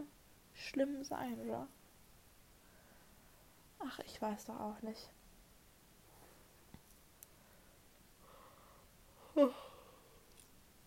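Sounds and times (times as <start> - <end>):
speech: 0.6 - 1.8, 3.8 - 5.2, 9.4 - 9.7
person yawning: 9.2 - 10.2.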